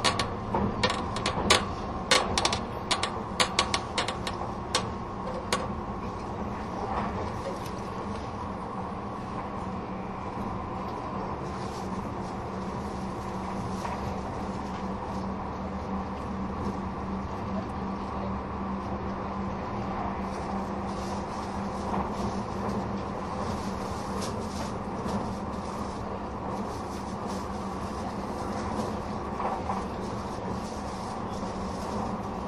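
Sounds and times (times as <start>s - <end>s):
clattering rail joints: 0.0s - 7.4s
Tobu N100 series Spacia X limited express train running: 0.0s - 32.4s.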